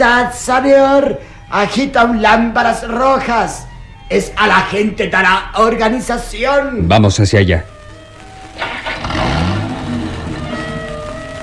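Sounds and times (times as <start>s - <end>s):
speech: 0.0s - 7.7s
car engine starting up, revving and pulling away: 7.7s - 11.4s.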